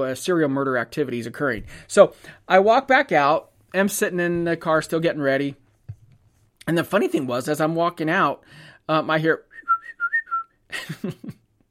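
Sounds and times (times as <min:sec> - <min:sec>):
speech: 0:00.0 - 0:05.6, 0:06.7 - 0:09.5, 0:10.8 - 0:11.4
person whistling short clear notes: 0:09.5 - 0:10.6.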